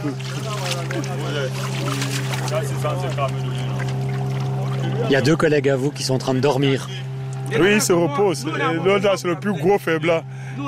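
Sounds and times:
speech: 0.0s - 3.9s, 4.8s - 10.6s
water pouring and splashing while washing up on a boat: 0.0s - 5.4s
boat engine drone: 0.0s - 10.6s.

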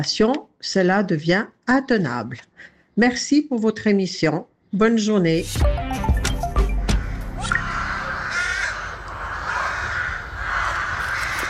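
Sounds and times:
speech: 0.0s - 5.8s
flock of rooks cawing: 6.7s - 11.4s.

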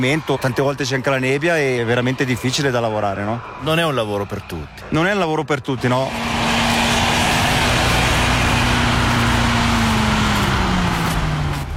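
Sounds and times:
speech: 0.0s - 6.4s
snow blower machine engine running at the Novena Pass: 6.0s - 11.7s.

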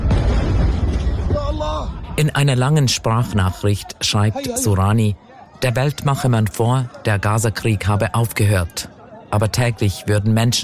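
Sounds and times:
deep rumbling explosion boom at night in Gaza City: 0.0s - 2.2s
speech: 2.2s - 10.6s.

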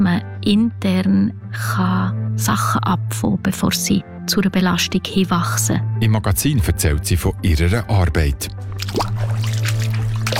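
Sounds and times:
speech: 0.1s - 9.4s
bare feet wading through cold water: 8.6s - 10.3s.

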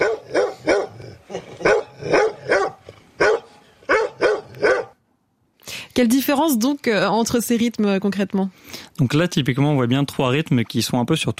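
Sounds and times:
dog barking: 0.0s - 5.0s
speech: 6.0s - 11.3s.

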